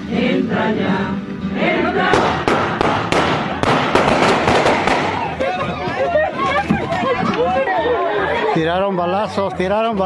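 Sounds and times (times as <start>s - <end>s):
agitated crowd shouting and murmuring at a cemetery funeral: 0.0s - 10.0s
speech: 0.1s - 2.1s, 8.7s - 10.0s
gunshots at a cemetery funeral: 2.1s - 5.3s
laughter: 4.7s - 10.0s.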